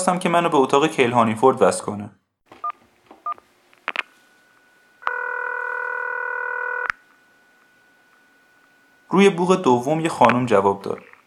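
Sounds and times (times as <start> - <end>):
speech: 0.0 - 2.2, 9.1 - 11.1
long steady electronic tone: 3.3 - 10.2.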